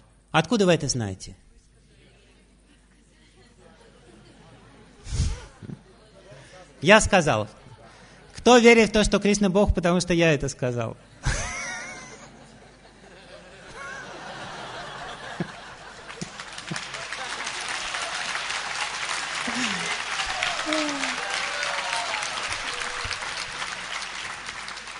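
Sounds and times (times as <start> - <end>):
speech: 0.3 - 1.4, 6.8 - 7.6, 8.4 - 11.4
laughter: 2.6 - 6.6, 11.0 - 24.8
audience applause at a talk: 13.8 - 24.9.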